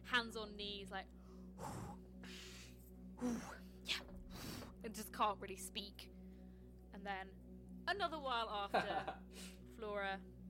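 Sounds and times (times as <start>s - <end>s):
speech: 0.1s - 2.4s, 3.2s - 4.0s, 4.8s - 6.2s, 7.0s - 10.3s
person imitating out-of-breath panting: 1.4s - 3.5s.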